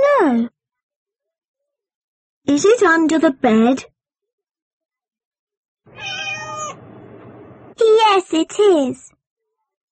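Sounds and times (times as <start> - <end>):
speech: 2.5 - 3.9, 7.9 - 9.2
cat meowing: 5.9 - 6.8.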